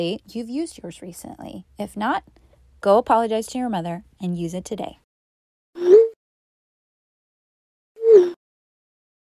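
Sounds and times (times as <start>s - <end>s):
speech: 0.0s - 5.0s
cell phone vibration buzzes: 8.0s - 8.4s.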